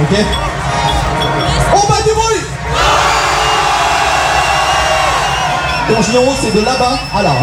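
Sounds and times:
speech: 0.1s - 0.6s, 1.8s - 3.1s, 5.9s - 7.4s
section of a large audience roaring, cheering and whooping: 2.7s - 7.4s.

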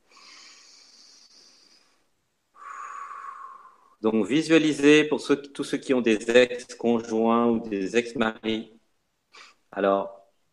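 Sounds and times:
deep breath: 0.0s - 4.0s
speech: 4.0s - 8.8s, 9.4s - 10.5s.

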